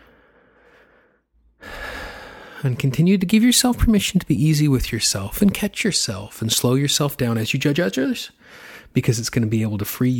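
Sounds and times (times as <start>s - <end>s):
slow deep breath: 0.0s - 2.7s, 8.4s - 8.9s
speech: 2.6s - 10.1s.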